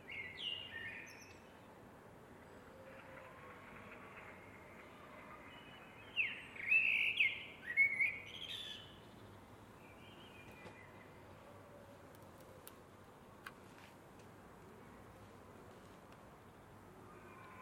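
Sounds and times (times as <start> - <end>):
Eurasian blackbird song: 0.0 - 1.7, 3.8 - 11.4.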